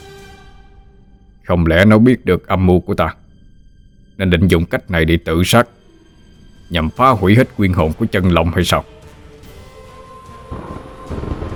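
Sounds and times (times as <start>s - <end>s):
speech: 1.5s - 3.2s, 4.2s - 5.8s, 6.7s - 9.0s
thunder from a lightning bolt: 10.4s - 11.5s.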